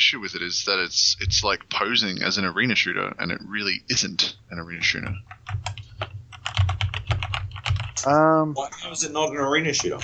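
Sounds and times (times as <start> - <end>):
speech: 0.1 - 5.8, 8.0 - 10.0
rapid forceful typing on a computer keyboard: 4.7 - 10.0.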